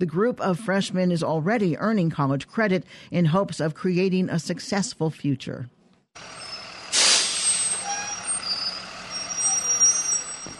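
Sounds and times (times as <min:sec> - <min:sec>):
speech: 0:00.0 - 0:06.4
school bus engine idling in Greenville in the Mississippi Delta: 0:06.2 - 0:10.5
faint high whines and squeaks: 0:06.3 - 0:06.7, 0:07.4 - 0:10.5
school bus air brake hiss: 0:06.6 - 0:08.4.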